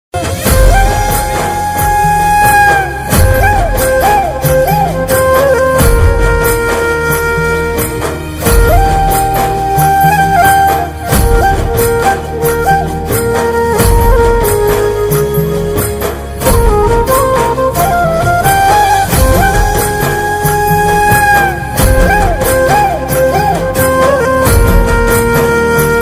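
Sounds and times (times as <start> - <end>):
instrumental flute ringtone: 0.2 - 26.0.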